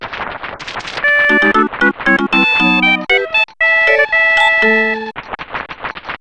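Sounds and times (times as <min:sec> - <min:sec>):
level complete jingle: 0:01.3 - 0:05.1.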